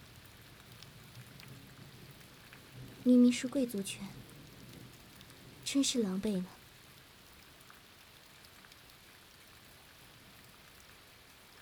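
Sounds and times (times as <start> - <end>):
steady rain hissing: 0.0 - 11.6
faint low rumble of distant thunder: 0.9 - 6.7
speech: 3.0 - 4.2, 5.7 - 6.6.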